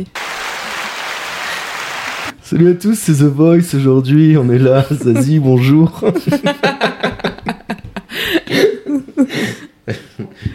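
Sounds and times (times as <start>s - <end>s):
speech: 0.0s - 0.2s, 2.5s - 6.9s
applause: 0.0s - 2.3s
laughter: 4.6s - 10.5s.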